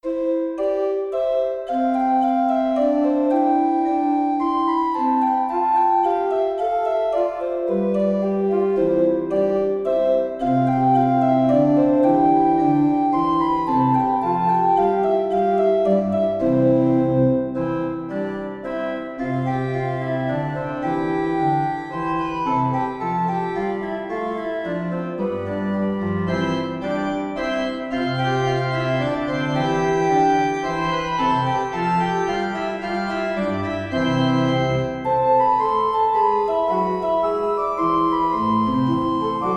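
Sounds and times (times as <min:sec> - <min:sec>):
organ playing an air and gavotte in C major: 0:00.0 - 0:39.5.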